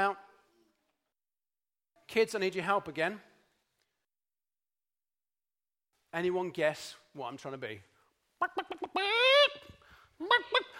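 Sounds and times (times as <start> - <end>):
speech: 2.1 - 3.3, 6.1 - 9.3, 10.2 - 10.7
person imitating chicken clucks and squawks: 8.4 - 10.6.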